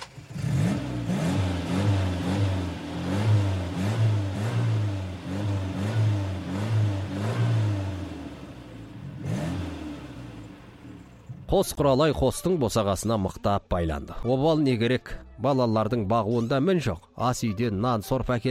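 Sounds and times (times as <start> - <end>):
vehicle engine revving as the driver presses the gas: 0.0 - 11.5
speech: 11.6 - 18.4.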